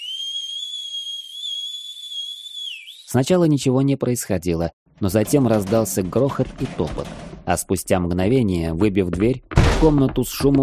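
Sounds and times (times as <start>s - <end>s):
young woman's deafening two-finger whistle: 0.0s - 3.2s
speech: 3.1s - 10.6s.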